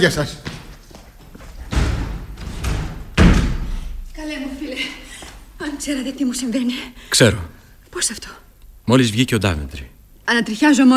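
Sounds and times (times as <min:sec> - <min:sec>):
speech: 0:00.0 - 0:00.5, 0:05.8 - 0:10.9
door slamming shut with a heavy bang as someone leaves: 0:01.5 - 0:04.2.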